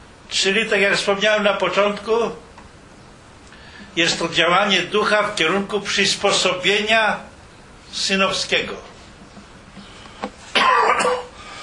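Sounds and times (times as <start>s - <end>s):
speech: 0.4s - 2.5s, 4.0s - 7.3s, 7.9s - 8.9s
person speaking to a religious congregation coughing: 10.5s - 11.4s.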